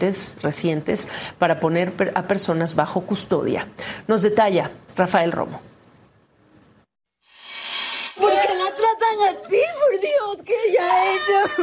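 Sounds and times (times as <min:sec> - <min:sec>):
speech: 0:00.0 - 0:05.7, 0:09.1 - 0:11.6
breathy rush of noise: 0:07.3 - 0:08.5
girl crying hysterically with high-pitched sobs and wails: 0:08.2 - 0:11.6.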